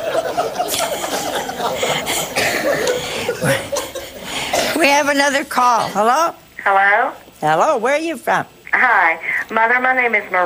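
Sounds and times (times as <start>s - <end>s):
person chuckling: 0.2s - 4.5s
person coughing: 0.7s - 5.0s
speech: 5.0s - 10.4s.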